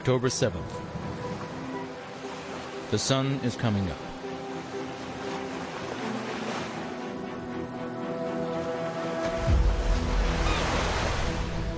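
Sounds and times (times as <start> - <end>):
speech: 0.0 - 1.0, 2.9 - 4.1
sea waves washing onto a shore in Gaza at sunrise: 0.5 - 11.7.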